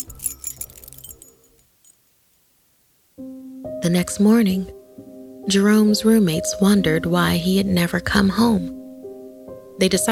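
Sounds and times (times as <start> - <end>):
keys jangling while unlocking a door: 0.0 - 2.0
speech: 3.2 - 4.8, 5.5 - 8.8, 9.8 - 10.1.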